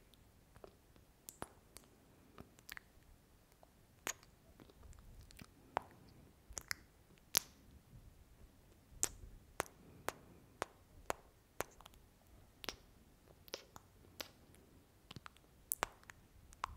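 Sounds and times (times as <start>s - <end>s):
sharp mouth clicks: 2.5s - 7.6s, 9.0s - 12.0s, 12.6s - 16.7s.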